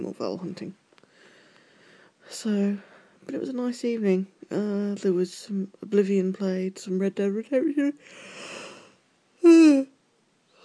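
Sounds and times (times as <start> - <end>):
speech: 0.0 - 0.8, 2.3 - 8.6, 9.4 - 9.9
person yawning: 8.6 - 9.9.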